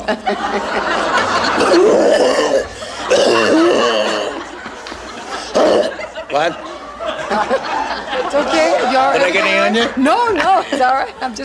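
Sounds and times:
laughter: 0.0 - 11.4
speech: 0.1 - 3.6, 6.3 - 6.7, 7.3 - 11.4
person sputtering coughs after choking on a drink: 3.0 - 4.2.

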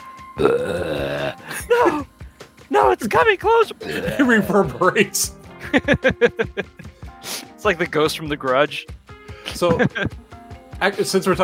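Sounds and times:
speech: 0.4 - 0.9, 3.0 - 6.9, 7.6 - 10.2, 10.8 - 11.4
voice imitating a low gurgling burp in an alley on a park back lot: 0.4 - 2.1, 3.8 - 4.8
laughter: 1.4 - 7.4, 9.4 - 11.4
brief breathy pause: 2.2 - 2.6, 6.8 - 7.6, 9.1 - 9.6.

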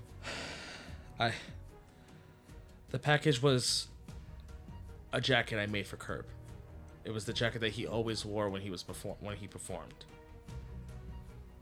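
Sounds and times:
woman breathing heavily and shakily: 0.0 - 2.8
speech: 1.2 - 1.6, 2.9 - 3.9, 5.1 - 6.4, 7.0 - 10.2.

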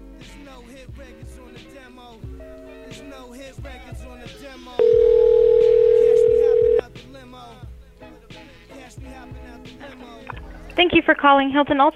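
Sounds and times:
speech: 0.5 - 6.0, 9.0 - 11.9
telephone dial tone from a dialing machine: 4.8 - 6.8.

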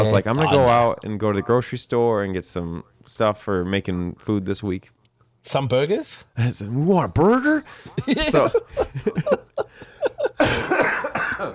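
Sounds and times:
speech: 0.0 - 9.4, 11.4 - 11.5
laughter: 7.8 - 11.5
person coughing: 10.4 - 11.5.

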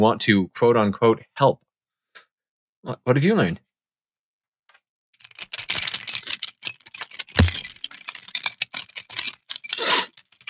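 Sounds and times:
speech: 0.0 - 1.7, 2.8 - 3.6
bunch of keys jangling, swung back and forth: 5.2 - 10.4.

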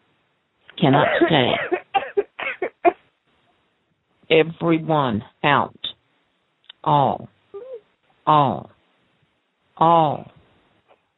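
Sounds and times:
speech: 0.8 - 1.8, 4.3 - 5.8, 6.8 - 7.3, 8.3 - 8.7, 9.8 - 10.4
short harsh coughs: 1.0 - 3.0.

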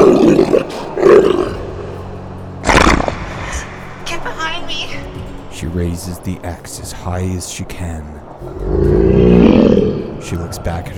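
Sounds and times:
wolf snarling and roaring in a forest: 0.0 - 1.9, 2.6 - 3.4, 8.4 - 10.2
speech: 5.8 - 9.3, 10.2 - 10.9.

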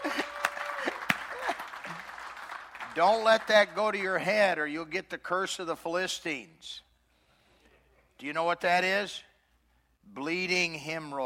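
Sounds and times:
audience clapping for the band: 0.0 - 4.4
speech: 3.0 - 6.8, 8.2 - 9.3, 10.1 - 11.2.

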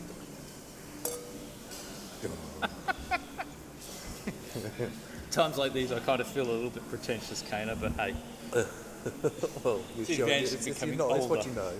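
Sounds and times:
glasses clinking together in a toast: 1.0 - 1.5
faint voices and room murmur: 1.4 - 11.7
laughter: 2.2 - 5.1, 8.6 - 10.0
speech: 4.8 - 11.7.

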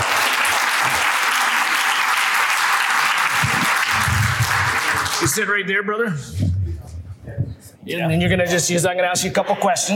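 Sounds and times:
audience applause: 0.0 - 5.5
speech: 5.2 - 6.5, 7.3 - 9.9.

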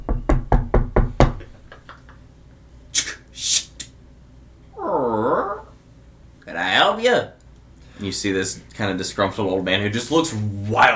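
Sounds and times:
knocking on a closed house door: 0.0 - 1.6
drawn-out wavering vocal sound: 4.8 - 5.8
speech: 8.0 - 10.9.

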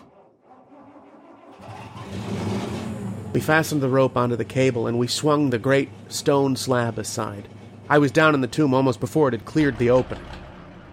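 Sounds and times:
engine turning over and catching: 0.0 - 3.4, 9.6 - 10.9
speech: 3.4 - 10.4.

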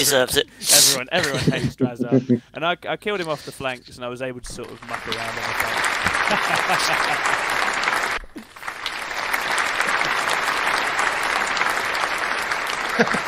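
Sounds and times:
speech: 0.0 - 7.6, 13.0 - 13.2
laughter: 0.7 - 2.4, 5.1 - 8.2, 9.6 - 11.0, 12.7 - 13.2
loud dense applause from many hands: 4.6 - 13.2.

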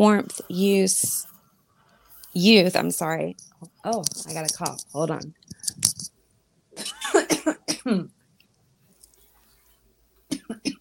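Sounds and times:
speech: 0.0 - 1.3, 2.4 - 6.0, 6.8 - 8.2
woman clearing throat: 6.8 - 8.1, 10.3 - 10.7
woman coughing: 6.8 - 8.1, 10.3 - 10.7.

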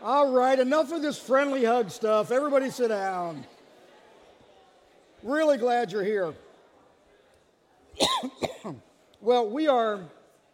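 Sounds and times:
speech: 0.5 - 3.6, 5.2 - 6.4, 8.0 - 10.2
harsh coughs: 8.0 - 8.8.

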